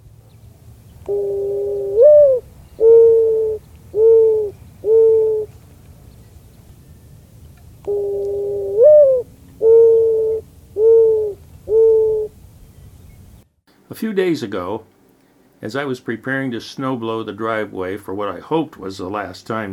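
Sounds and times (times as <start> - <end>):
low hum: 0.0 - 19.7
speech: 1.0 - 1.4, 14.0 - 14.9, 15.6 - 19.7
mourning dove cooing: 1.0 - 5.6, 7.9 - 12.4.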